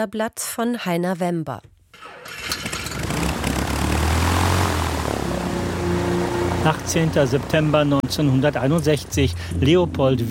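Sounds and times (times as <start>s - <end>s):
speech: 0.0s - 1.7s, 6.6s - 10.2s
propeller engines of a waiting DC-6 airliner droning in Leopoldville Congo: 2.7s - 10.1s.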